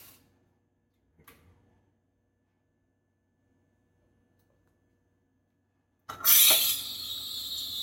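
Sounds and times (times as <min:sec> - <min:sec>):
two-boiler espresso machine steam wand steaming milk in a cup: 0:06.2 - 0:07.8.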